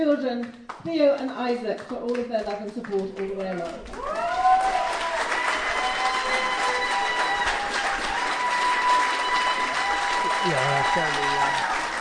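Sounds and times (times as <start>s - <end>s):
speech: 0.0s - 4.4s, 10.4s - 11.8s
large crowd cheering and applauding after a speech: 3.7s - 12.0s.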